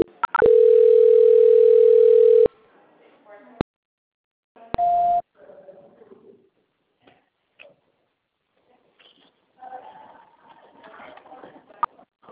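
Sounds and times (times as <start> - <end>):
quiet telephone line noise: 0.0 - 2.5
telephone call-transfer tone: 0.3 - 2.5, 4.8 - 5.2
shorter higher telephone beep: 4.8 - 5.2.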